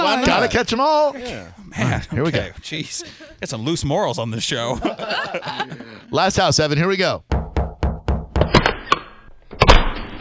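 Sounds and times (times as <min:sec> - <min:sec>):
laughter: 0:00.0 - 0:00.7, 0:01.8 - 0:03.4, 0:04.4 - 0:06.1
speech: 0:00.0 - 0:07.4
knocking on a door: 0:07.3 - 0:08.5.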